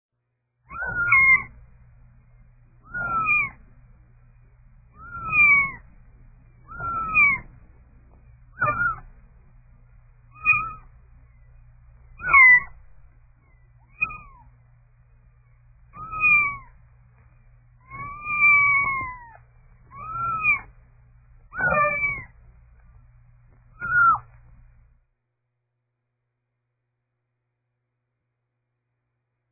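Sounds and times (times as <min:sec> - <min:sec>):
kitten: 0:00.6 - 0:01.8, 0:02.8 - 0:03.8, 0:04.9 - 0:09.3, 0:10.2 - 0:14.6, 0:15.4 - 0:20.8, 0:21.5 - 0:22.9, 0:23.5 - 0:24.8.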